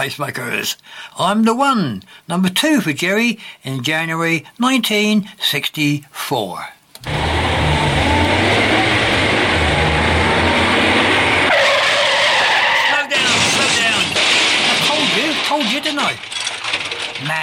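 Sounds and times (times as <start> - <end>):
speech: 0.0 - 7.2, 17.2 - 17.4
car engine rumble: 7.0 - 11.5
car skidding to a halt on a lonely road: 7.0 - 14.6
bump: 7.0 - 17.4.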